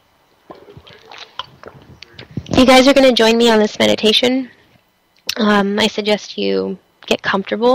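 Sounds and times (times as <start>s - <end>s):
gulping swallows of water: 0.5s - 2.5s
person sipping water: 0.5s - 2.5s
speech: 2.6s - 4.6s, 5.4s - 7.7s.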